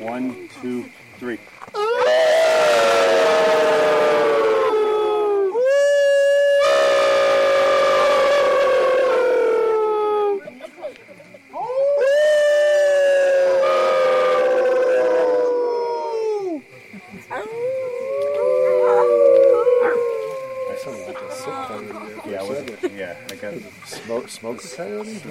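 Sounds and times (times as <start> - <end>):
speech: 0.0 - 2.3, 24.4 - 25.2
crowd of people howling in imitation of coyotes: 1.8 - 10.5, 11.6 - 16.7, 17.3 - 22.6.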